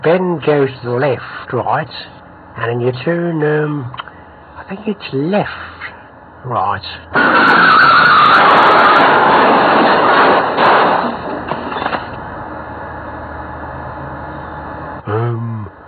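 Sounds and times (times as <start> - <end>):
speech: 0.0 - 4.0, 4.7 - 10.6
car engine roaring: 4.0 - 15.8
car tyres skidding: 7.1 - 12.5
crunching car crash impacts: 7.2 - 12.2.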